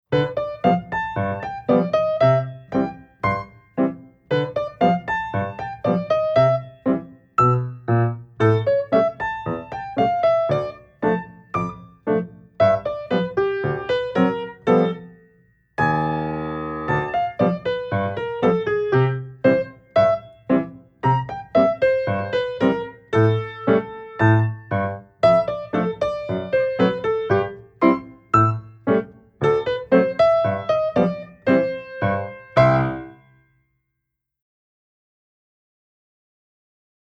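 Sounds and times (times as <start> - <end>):
ragtime piano exercises: 0.1 - 33.4.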